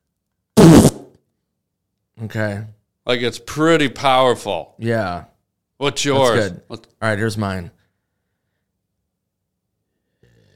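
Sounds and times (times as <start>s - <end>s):
mouth-made imitation of a broccoli fart: 0.6s - 1.2s
speech: 2.2s - 7.8s.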